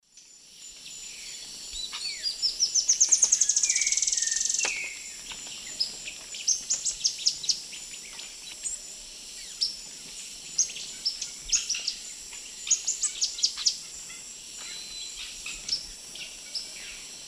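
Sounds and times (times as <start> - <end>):
Terenura spodioptila song and calls in South American eastern lowlands: 0.8 - 17.1.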